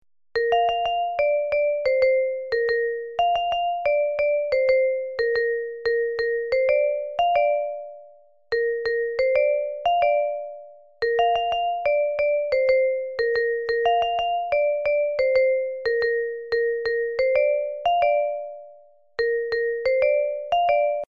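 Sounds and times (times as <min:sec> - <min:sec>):
Apple message notification ringtone: 0:00.4 - 0:08.0, 0:08.6 - 0:21.0.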